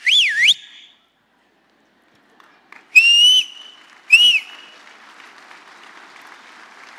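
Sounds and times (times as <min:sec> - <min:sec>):
parent whistling to call children: 0:00.0 - 0:00.9, 0:03.0 - 0:04.6.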